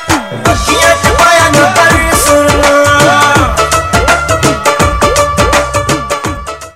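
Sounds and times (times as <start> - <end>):
dhol drum: 0.4 - 6.5.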